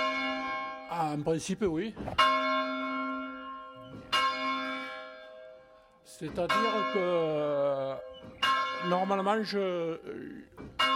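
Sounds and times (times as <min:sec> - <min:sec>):
church bell ringing: 0:00.0 - 0:10.9
speech: 0:01.1 - 0:02.3, 0:06.2 - 0:10.7.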